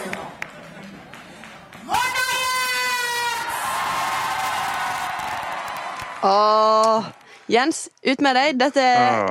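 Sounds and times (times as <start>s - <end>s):
election night crowd cheering, shouting and roaring: 1.8s - 6.9s
speech: 6.2s - 9.2s.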